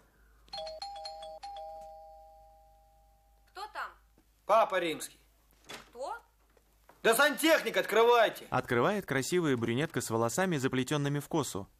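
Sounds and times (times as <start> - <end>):
apartment doorbell electronic chime tones: 0.5 - 3.4
speech: 4.5 - 5.2, 7.0 - 11.7.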